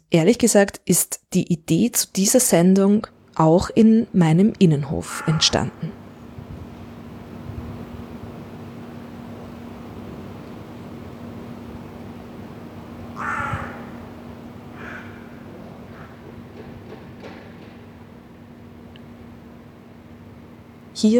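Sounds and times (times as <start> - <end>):
hum and hiss of urban air: 0.0 - 21.1
speech: 0.1 - 6.0
crows cawing in an old-building inner courtyard in Vienna: 5.0 - 6.1, 13.1 - 16.4.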